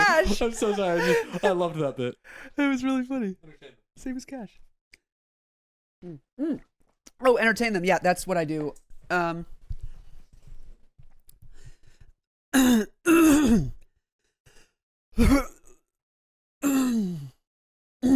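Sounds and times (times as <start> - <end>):
laughter: 0.0 - 2.2
speech: 0.2 - 4.7, 6.0 - 9.6, 12.5 - 13.8, 15.2 - 15.6
person clearing throat: 12.6 - 13.8, 15.2 - 15.8, 16.6 - 17.2.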